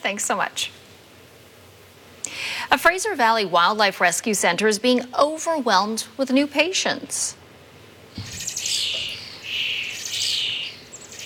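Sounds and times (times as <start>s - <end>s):
speech: 0.0s - 0.8s, 2.3s - 7.4s
faint low thump: 8.2s - 9.4s
baby birds chirping at a wildlife rescue center: 8.2s - 11.2s.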